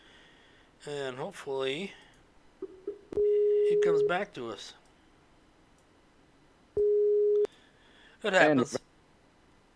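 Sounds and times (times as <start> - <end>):
speech: 0.8 - 2.0, 3.7 - 4.8, 8.2 - 8.8
steady electronic phone call tone while calling back: 3.2 - 4.1, 6.8 - 7.5.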